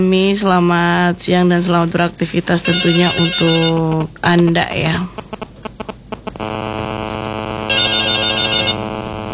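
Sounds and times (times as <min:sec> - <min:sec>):
speech: 0:00.0 - 0:05.2
telephone ringing for an incoming call: 0:02.6 - 0:03.9, 0:07.5 - 0:09.1.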